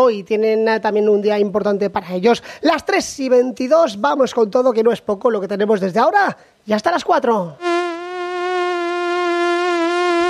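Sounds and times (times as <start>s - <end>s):
speech: 0.0s - 7.7s
insect buzzing: 7.6s - 10.2s.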